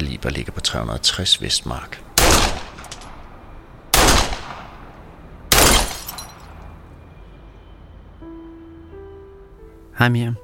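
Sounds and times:
speech: 0.2 - 2.6, 10.0 - 10.4
gunshots fired at a bottle: 2.2 - 3.1, 3.9 - 4.8, 5.5 - 6.3.

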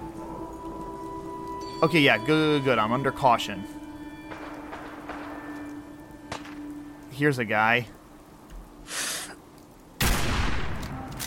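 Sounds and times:
speech: 1.8 - 3.8, 7.2 - 8.0
faint hiss: 5.7 - 10.0
video game gunshot during a fight with supermutants: 10.0 - 11.0.

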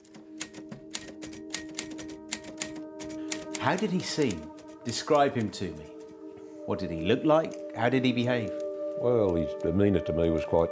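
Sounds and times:
typewriter key strikes: 0.0 - 6.2
speech: 3.6 - 6.0, 6.7 - 10.6.

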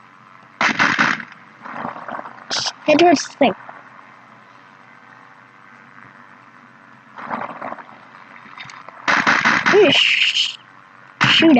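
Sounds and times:
softer lower crackling noise: 0.0 - 11.5
gunfire in a flying capture-the-flag video game: 0.6 - 2.8, 7.2 - 7.9, 9.0 - 10.5, 11.2 - 11.5
speech: 2.9 - 3.6.

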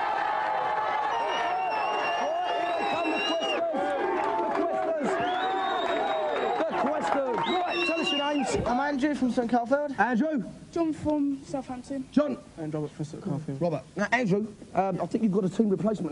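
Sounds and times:
studio audience cheering and whooping for a quiz team: 0.0 - 8.7
high whistles from a studio audience: 1.0 - 3.7, 5.1 - 6.7, 7.4 - 8.6
speech: 8.5 - 16.0.

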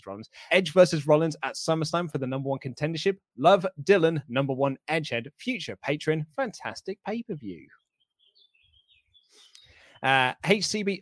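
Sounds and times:
speech: 0.0 - 7.8, 10.0 - 11.0
birds singing outside an open balcony: 6.6 - 11.0.

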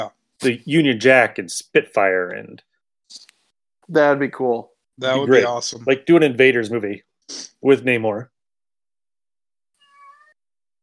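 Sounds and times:
speech: 0.0 - 3.3, 3.9 - 8.3
drawn-out cat meow at a door: 9.8 - 10.4.

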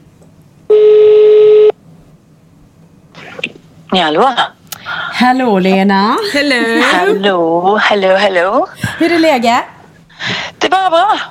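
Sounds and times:
telephone call ringing tone: 0.7 - 1.7
speech: 3.9 - 4.5, 5.2 - 9.7, 10.3 - 11.2.

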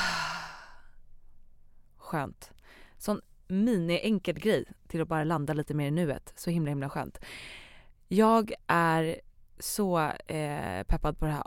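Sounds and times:
deep breath in through nose, out through mouth: 0.0 - 0.8
speech: 2.1 - 11.4.

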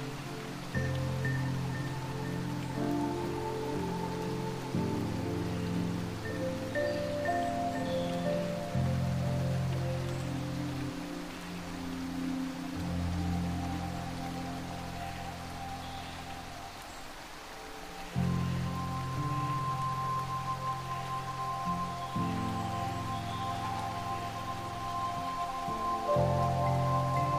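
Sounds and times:
constant hiss of falling water and droplets: 0.0 - 27.3
soft dreamy Celtic-style music: 0.0 - 27.3.

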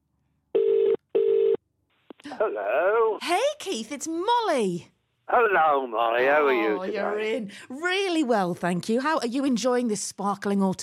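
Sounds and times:
telephone ringing tone on an outgoing call: 0.6 - 1.6
speech: 2.3 - 10.8.

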